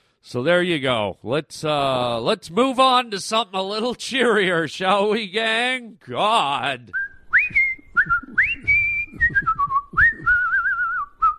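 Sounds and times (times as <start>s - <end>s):
speech: 0.2s - 8.5s
person whistling a bright bouncy tune: 6.9s - 11.3s.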